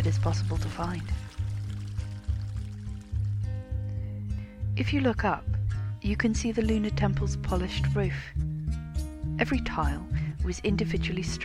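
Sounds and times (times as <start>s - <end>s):
spring water pouring into a canal channel: 0.0s - 4.0s
speech: 0.1s - 1.4s, 4.8s - 8.5s, 9.4s - 11.4s.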